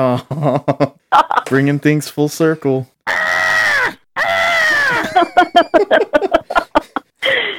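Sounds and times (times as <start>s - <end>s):
speech: 0.0s - 3.2s, 5.3s - 6.4s
person imitating a dog crying: 3.1s - 5.2s
laughter: 4.8s - 7.5s.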